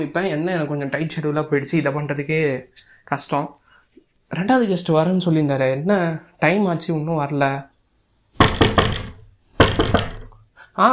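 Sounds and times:
speech: 0.0 - 3.6, 4.3 - 7.7, 10.8 - 10.9
firm knocking on a door: 8.4 - 10.3.

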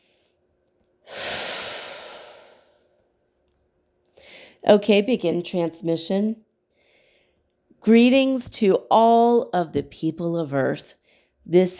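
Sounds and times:
person taking a deep breath: 1.0 - 2.9, 4.2 - 4.6, 6.7 - 7.4
speech: 4.6 - 6.4, 7.8 - 11.7.

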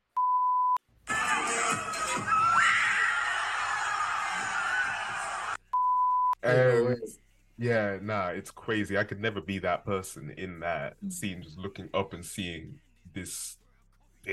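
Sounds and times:
huge stadium crowd screaming in terror: 1.1 - 5.6
short electronic beeps: 5.8 - 6.4
speech: 6.4 - 13.6.

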